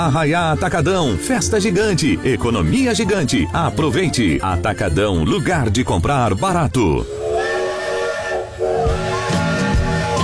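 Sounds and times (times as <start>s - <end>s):
speech: 0.0s - 7.3s
steam train whistle blowing: 7.0s - 10.2s.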